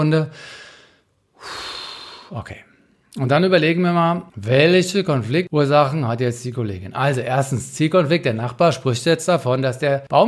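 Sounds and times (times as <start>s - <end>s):
speech: 0.0s - 0.6s, 2.3s - 10.2s
deep breath in and out: 0.3s - 3.0s.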